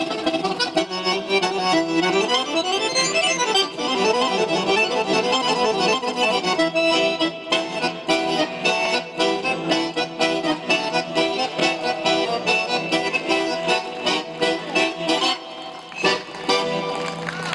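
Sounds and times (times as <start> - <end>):
garmon Russian accordion played virtuosically for a concert audience: 0.0 - 17.4.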